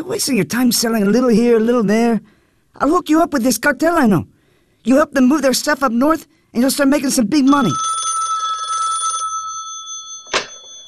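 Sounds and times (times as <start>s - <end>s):
speech: 0.0s - 8.0s
telephone ringing with a buzzing electronic tone: 7.5s - 10.8s.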